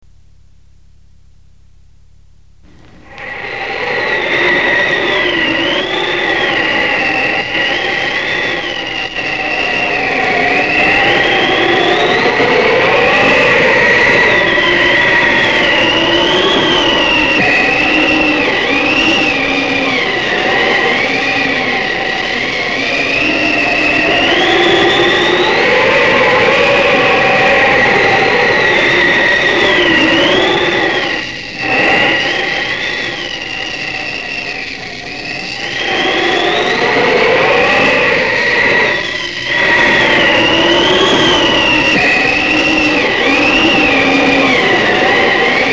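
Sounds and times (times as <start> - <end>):
snowstorm: 2.7 - 45.7.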